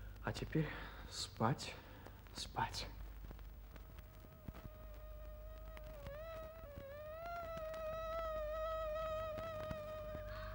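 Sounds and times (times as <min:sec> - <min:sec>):
speech: 0:00.2 - 0:03.0
high-pitched whine of mosquitoes in a stable at night: 0:04.1 - 0:10.5.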